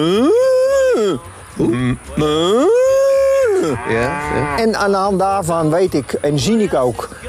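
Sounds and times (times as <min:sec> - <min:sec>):
speech: 0:00.0 - 0:00.4, 0:01.0 - 0:02.8, 0:03.6 - 0:07.2
cow mooing with rising pitch: 0:02.3 - 0:04.8.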